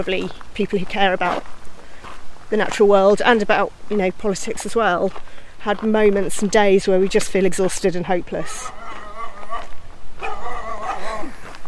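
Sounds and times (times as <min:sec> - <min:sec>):
speech: 0:00.0 - 0:01.6, 0:02.5 - 0:08.8
dog barking and yipping: 0:08.4 - 0:11.3.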